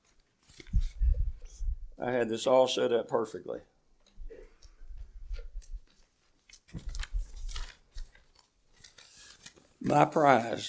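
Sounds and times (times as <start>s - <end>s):
sheets of paper rustling as a stack is leafed through: 0.0s - 1.0s, 5.3s - 10.6s
speech: 2.0s - 3.8s, 10.0s - 10.6s.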